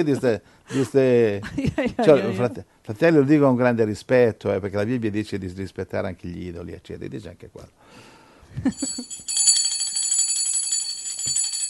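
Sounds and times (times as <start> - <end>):
speech: 0.0 - 9.2
bell ringing in a rapid trill: 8.7 - 11.6.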